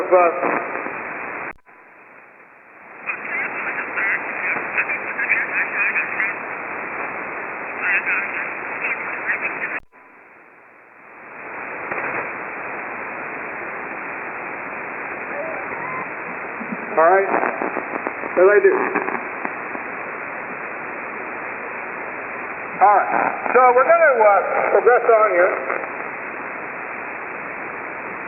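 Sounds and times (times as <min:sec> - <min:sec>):
shortwave radio static: 0:00.0 - 0:28.2
speech: 0:00.1 - 0:00.7, 0:24.2 - 0:25.9
warbling, whistling shortwave radio interference with garbled voice-like tones: 0:15.2 - 0:16.6.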